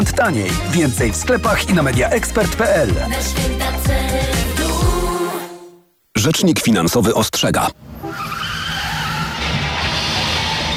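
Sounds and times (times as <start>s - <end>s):
speech: 0.1s - 4.6s, 6.2s - 7.9s
car skidding with harsh tire screech: 7.9s - 10.7s.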